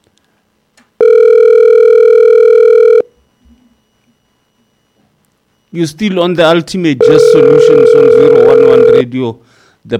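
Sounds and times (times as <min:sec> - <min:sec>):
phone line ringback tone during a radio show: 0:01.0 - 0:04.9, 0:07.0 - 0:09.0
speech: 0:05.7 - 0:09.9.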